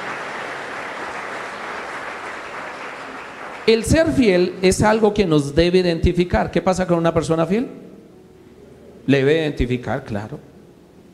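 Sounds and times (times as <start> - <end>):
congregation applauding: 0.0 - 4.2
speech: 3.7 - 7.8, 9.0 - 10.5.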